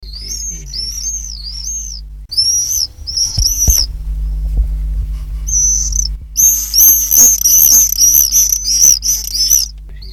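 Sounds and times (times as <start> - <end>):
common swifts Apus apus screaming in shrill buzzy trills: 0.0 - 4.5, 5.4 - 10.1
low rumbling thumps: 0.0 - 10.1
steady hum: 0.0 - 10.1.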